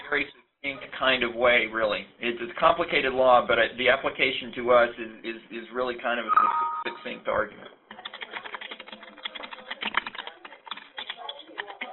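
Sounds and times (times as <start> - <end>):
speech: 0.1 - 7.8
rapid computer keyboard typing over a conference call phone line: 7.9 - 11.9.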